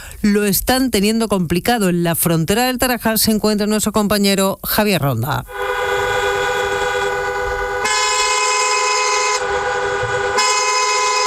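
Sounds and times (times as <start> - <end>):
speech: 0.2 - 5.7
car horns honking at a busy border crossing at night: 5.5 - 11.2
low traffic rumble of queuing traffic: 5.5 - 11.2.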